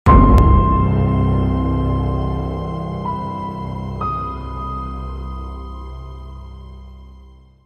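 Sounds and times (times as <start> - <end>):
dark cinematic horror suspense riser: 0.1 - 5.3.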